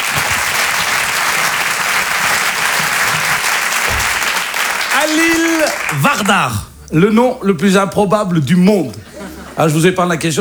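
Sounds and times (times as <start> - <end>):
theatre audience applause: 0.0 - 6.7
speech: 5.0 - 10.3
laughter: 8.8 - 10.3.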